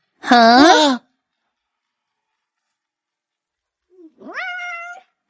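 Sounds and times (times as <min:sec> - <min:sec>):
speech: 0:00.3 - 0:01.0
kitten meowing: 0:04.0 - 0:05.1.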